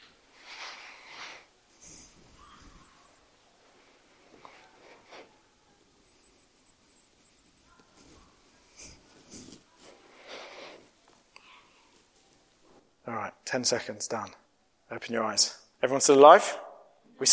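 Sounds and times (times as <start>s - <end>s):
faint rustling: 0.0s - 13.0s
group of people taking slow deep breaths through nose and mouth: 0.3s - 5.4s, 8.8s - 12.0s
speech: 13.5s - 16.6s, 17.2s - 17.3s.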